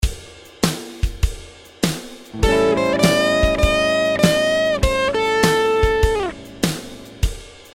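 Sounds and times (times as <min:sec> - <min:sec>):
blues note bend: 0:02.4 - 0:07.3.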